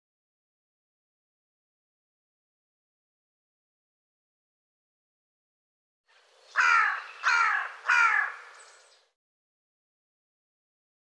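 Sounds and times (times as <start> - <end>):
bird cawing: 6.5 - 9.1.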